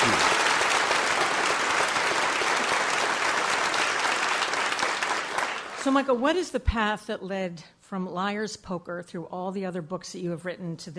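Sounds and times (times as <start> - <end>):
large audience applause: 0.0 - 6.1
speech: 5.8 - 10.9.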